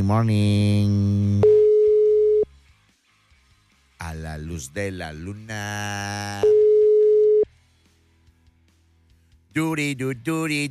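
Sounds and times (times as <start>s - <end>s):
speech: 0.0s - 1.5s, 4.0s - 6.7s, 9.6s - 10.7s
WhatsApp call ringing tone: 1.4s - 2.4s, 6.4s - 7.5s.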